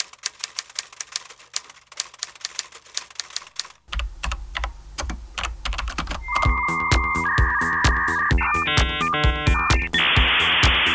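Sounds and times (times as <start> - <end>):
typewriter typing: 0.0 - 6.5
sustained electronic tones: 6.2 - 10.9.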